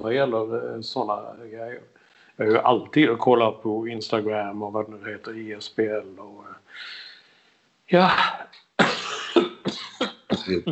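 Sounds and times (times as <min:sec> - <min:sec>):
speech: 0:00.0 - 0:07.0, 0:07.9 - 0:09.0, 0:10.4 - 0:10.7
harsh dry coughs: 0:08.8 - 0:10.7.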